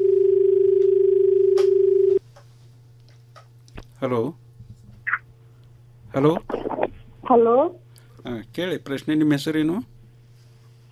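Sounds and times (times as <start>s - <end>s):
incoming telephone call tone: 0.0s - 2.2s
faint hum: 0.0s - 10.8s
speech: 4.0s - 4.4s, 6.1s - 9.9s.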